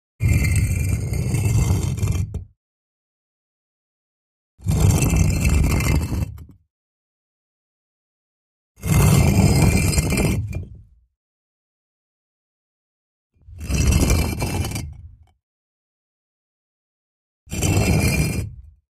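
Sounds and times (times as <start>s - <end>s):
heavy stone brick being pushed: 0.2s - 2.5s, 4.6s - 6.5s, 8.8s - 10.9s, 13.5s - 15.2s, 17.5s - 18.7s.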